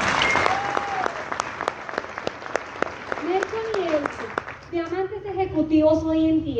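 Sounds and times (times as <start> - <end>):
audience clapping: 0.0 - 5.0
speech: 5.8 - 6.5.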